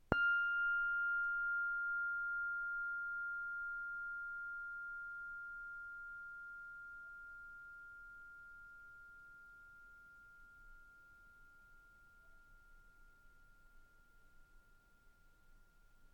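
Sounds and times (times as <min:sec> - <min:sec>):
cloche plate bell F6: 0:00.0 - 0:16.1.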